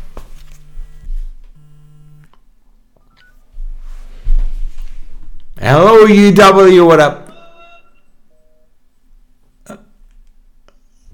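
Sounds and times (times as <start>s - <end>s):
speech: 5.6s - 7.2s
phone electronic ringtone for an incoming call: 7.2s - 8.7s.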